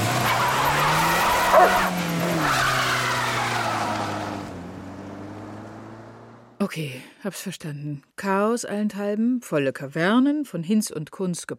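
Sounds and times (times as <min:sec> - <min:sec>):
car tires squealing as it drives off: 0:00.0 - 0:06.4
car engine whining: 0:00.0 - 0:06.6
speech: 0:06.7 - 0:11.5.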